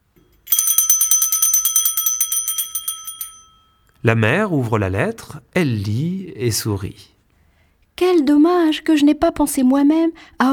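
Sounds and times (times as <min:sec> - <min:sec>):
doorbell rung by a postman: 0:00.3 - 0:04.0
speech: 0:04.0 - 0:07.2, 0:08.1 - 0:10.5.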